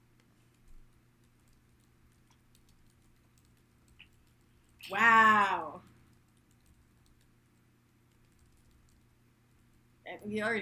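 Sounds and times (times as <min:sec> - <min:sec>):
typing on a computer keyboard: 0:00.2 - 0:04.8, 0:06.1 - 0:07.4, 0:08.1 - 0:09.8
speech: 0:04.9 - 0:05.9, 0:10.2 - 0:10.6.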